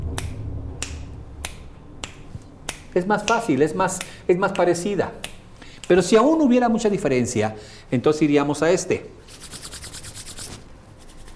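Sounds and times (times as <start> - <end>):
faint low hum: 0.0 - 11.3
finger snaps for a sound calibration check: 0.1 - 6.1
speech: 2.9 - 5.2, 5.9 - 9.3.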